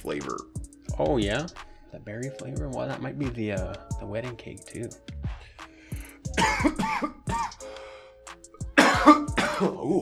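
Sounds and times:
speech: 0:00.0 - 0:05.6, 0:06.3 - 0:07.2, 0:09.6 - 0:10.0
person coughing: 0:06.3 - 0:07.6, 0:08.8 - 0:10.0.

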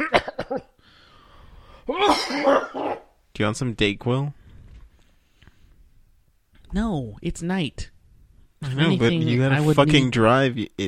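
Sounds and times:
dry coughs: 0:00.0 - 0:00.8, 0:01.9 - 0:03.2
faint hiss: 0:00.0 - 0:10.8
speech: 0:01.9 - 0:04.4, 0:06.7 - 0:08.0, 0:08.6 - 0:10.8.

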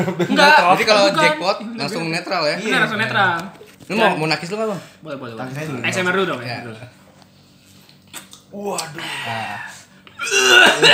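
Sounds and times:
speech: 0:00.0 - 0:07.0, 0:08.5 - 0:10.9
loud raspy throaty cough: 0:10.2 - 0:10.9.

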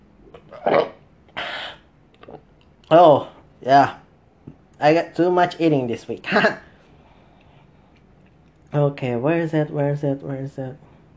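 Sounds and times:
fairly loud rumbling burp: 0:00.3 - 0:02.4
speech: 0:02.9 - 0:04.0, 0:04.8 - 0:06.7, 0:08.7 - 0:10.9.

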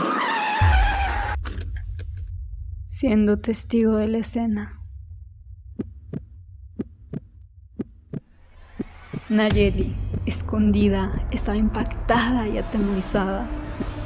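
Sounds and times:
car tires squealing as it brakes hard: 0:00.0 - 0:01.4
low rumbling hum: 0:00.6 - 0:14.0
speech: 0:03.0 - 0:04.8, 0:09.3 - 0:13.6
heavy heartbeat sound effect thumping: 0:05.6 - 0:12.0.

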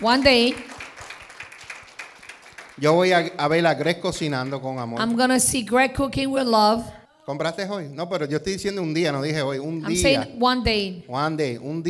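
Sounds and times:
speech: 0:00.0 - 0:00.7, 0:02.8 - 0:11.8
applause with many hands clapping: 0:00.0 - 0:05.1.

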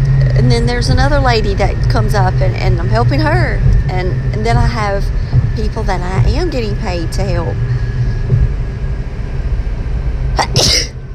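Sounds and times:
steady low rumbling hum: 0:00.0 - 0:11.1
speech: 0:00.4 - 0:07.8, 0:10.4 - 0:10.9
person sneezing: 0:10.4 - 0:10.9.

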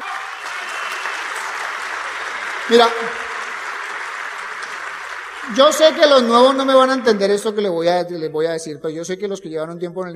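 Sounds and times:
crowd applauding: 0:00.0 - 0:07.4
speech: 0:02.7 - 0:03.2, 0:05.5 - 0:10.1.

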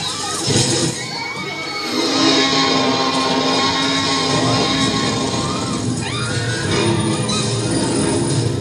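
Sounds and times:
crowd of people at a drive-in movie screaming and shouting in panic: 0:00.1 - 0:08.5.

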